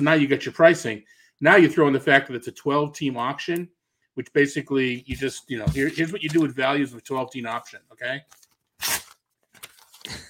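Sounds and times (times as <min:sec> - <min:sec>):
speech: 0:00.0 - 0:09.0
paper sheet being torn up and shredded: 0:08.4 - 0:10.0.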